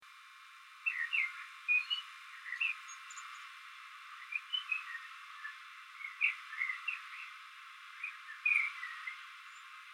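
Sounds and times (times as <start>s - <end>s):
common blackbird Turdus merula singing: 0.8s - 3.2s, 4.2s - 7.3s, 8.0s - 9.7s.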